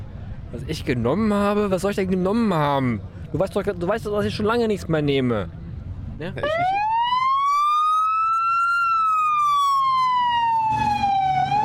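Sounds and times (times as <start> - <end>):
low road rumble: 0.0 - 11.6
speech: 0.5 - 5.6, 6.2 - 6.9
police car siren wailing while driving past over a square: 6.4 - 11.6.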